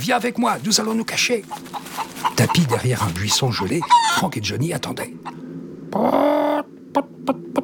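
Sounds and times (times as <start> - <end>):
speech: 0.0 - 5.4, 6.0 - 7.6
large hen clucking: 0.0 - 7.6.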